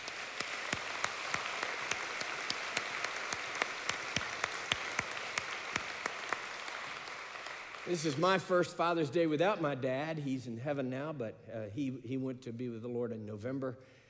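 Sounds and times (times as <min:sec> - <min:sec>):
audience applause: 0:00.0 - 0:08.6
speech: 0:07.9 - 0:14.0.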